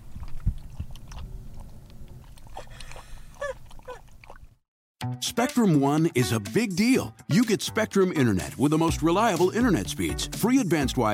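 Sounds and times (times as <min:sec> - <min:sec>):
dog lapping water inside a car: 0:00.0 - 0:04.6
dog whimpering: 0:02.5 - 0:04.1
speech: 0:05.2 - 0:11.1.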